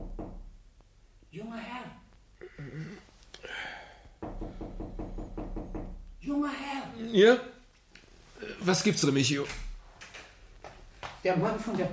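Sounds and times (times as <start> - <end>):
knocking on a bedroom door: 0.0 - 0.6, 4.2 - 6.1
speech: 6.5 - 7.5, 8.6 - 9.6, 11.2 - 11.9.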